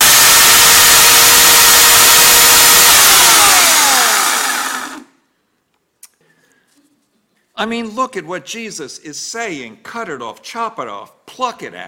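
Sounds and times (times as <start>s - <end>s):
chainsaw engine revving: 0.0s - 5.1s
speech: 7.6s - 11.8s.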